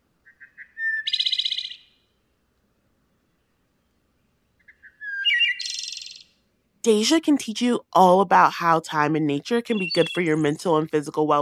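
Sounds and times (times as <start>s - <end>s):
wood thrush song: 0.0s - 6.6s, 9.6s - 10.8s
speech: 6.8s - 11.3s.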